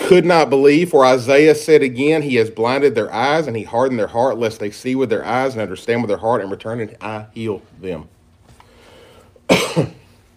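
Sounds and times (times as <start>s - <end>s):
speech: 0.1s - 8.2s, 9.5s - 10.0s
cough into a microphone: 9.5s - 10.2s.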